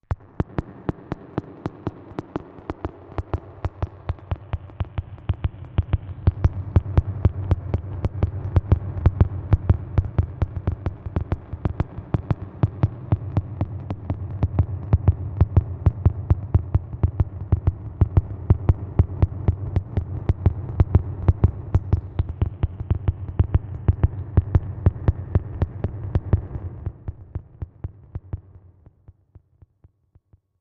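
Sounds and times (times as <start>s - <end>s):
electrical heart machine clicking: 0.1s - 28.6s.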